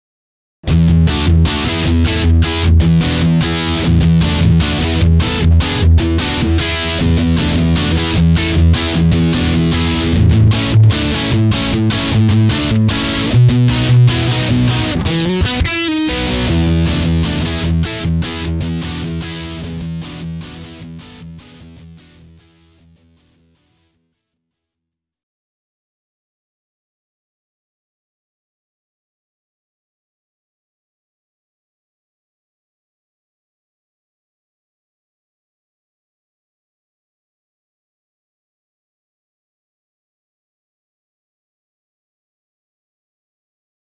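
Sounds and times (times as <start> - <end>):
classic rock music: 0.7 - 22.2.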